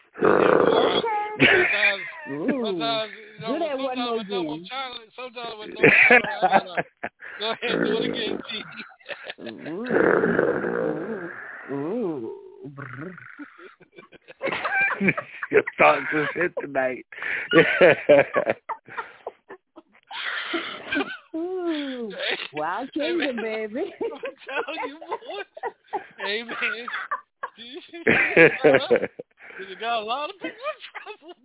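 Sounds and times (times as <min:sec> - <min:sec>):
person imitating a growl: 0:00.1 - 0:01.4, 0:07.6 - 0:08.8, 0:09.4 - 0:13.7
laughter: 0:00.6 - 0:04.5, 0:05.5 - 0:10.0, 0:13.0 - 0:31.4
speech: 0:03.0 - 0:07.0, 0:16.1 - 0:18.6, 0:28.4 - 0:29.2.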